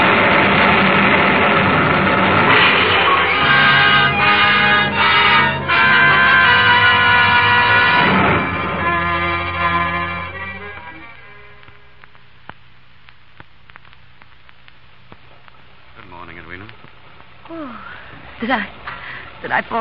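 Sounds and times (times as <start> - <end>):
low droning hum: 0.0 - 19.7
scattered raindrops tapping and dripping: 11.6 - 19.3
speech: 18.5 - 18.7, 19.5 - 19.7.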